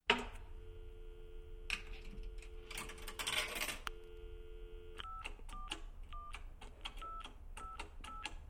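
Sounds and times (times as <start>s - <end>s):
telephone ringing: 0.1s - 6.4s, 7.0s - 8.2s.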